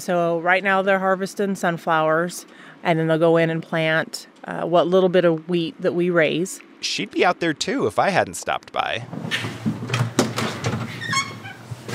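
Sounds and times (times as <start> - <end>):
speech: 0.0 - 9.7
wooden dining room chair knocks in a home in Colorado: 9.0 - 11.9.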